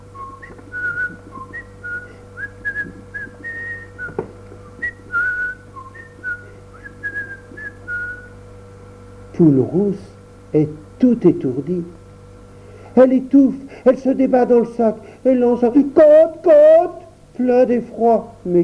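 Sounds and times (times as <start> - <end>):
faint constant hum: 0.0 - 18.6
person whistling a lilting tune: 0.2 - 8.3
speech: 9.4 - 12.0, 13.0 - 18.6.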